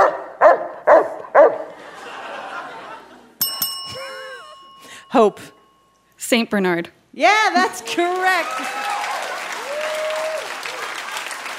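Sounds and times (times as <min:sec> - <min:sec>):
dog barking: 0:00.0 - 0:01.7
laughter: 0:01.7 - 0:04.6
bright bell ding: 0:03.4 - 0:06.1
speech: 0:05.1 - 0:05.6, 0:06.3 - 0:08.9.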